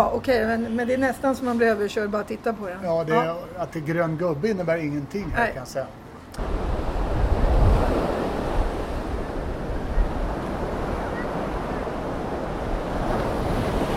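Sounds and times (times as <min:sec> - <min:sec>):
speech: 0:00.0 - 0:06.5
ocean waves washing onto a shore: 0:04.7 - 0:13.9
wind rumbling against the microphone: 0:06.4 - 0:13.9.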